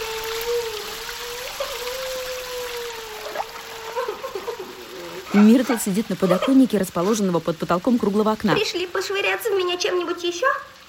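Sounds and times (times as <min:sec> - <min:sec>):
water bubbling: 0:00.0 - 0:08.7
water pouring from overflowing washbasins onto a toilet floor: 0:00.0 - 0:10.8
speech: 0:05.3 - 0:10.8.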